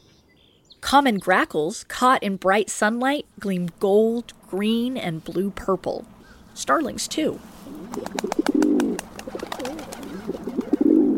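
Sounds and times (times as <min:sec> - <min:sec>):
speech: 0:00.8 - 0:08.3
rock pigeons cooing: 0:07.6 - 0:11.1.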